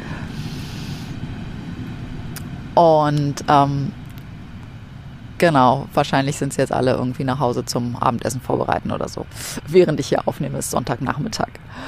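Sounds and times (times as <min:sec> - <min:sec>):
faint brief hiss: 0:00.0 - 0:04.8
S-Bahn commuter train passing at a distance: 0:00.0 - 0:11.8
speech: 0:02.8 - 0:04.0, 0:05.4 - 0:11.8.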